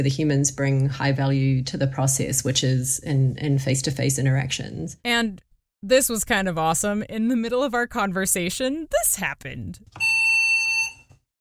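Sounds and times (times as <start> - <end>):
speech: 0.0 - 10.1
piercing electronic alarm tone from a daily health check alert: 10.0 - 11.2.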